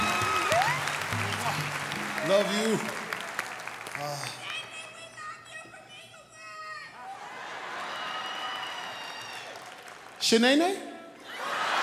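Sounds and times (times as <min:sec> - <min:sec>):
audience applause welcoming a guest onstage: 0:00.0 - 0:05.6, 0:07.1 - 0:10.8
speech: 0:02.3 - 0:03.0, 0:10.3 - 0:10.9.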